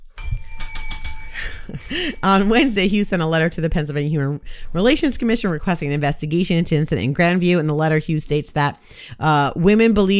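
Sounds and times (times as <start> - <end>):
bright bell ringing: 0.0 - 3.2
speech: 1.7 - 10.1.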